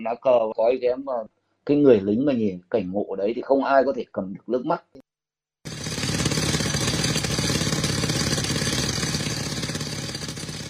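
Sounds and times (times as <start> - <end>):
speech: 0.0 - 5.0
concrete drill breaking large rocks in mountain forest in Tuyen Quang province Vietnam: 5.7 - 10.6
droning engine hum of concrete drill: 5.7 - 10.6.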